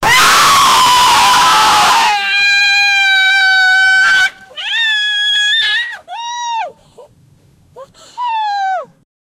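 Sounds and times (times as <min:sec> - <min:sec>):
people screaming: 0:00.0 - 0:06.5.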